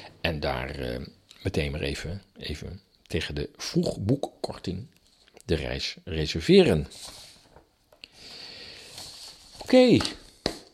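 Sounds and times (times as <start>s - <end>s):
speech: 0.3s - 7.2s, 9.7s - 10.2s
sheets of paper rustling and crinkling: 6.9s - 7.7s, 8.8s - 10.7s.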